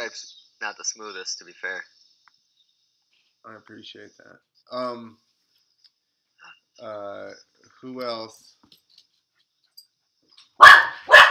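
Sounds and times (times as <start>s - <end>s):
speech: 0.1s - 2.0s, 3.4s - 5.2s, 6.8s - 8.8s
dogs barking excitedly as someone arrives home: 10.6s - 11.3s.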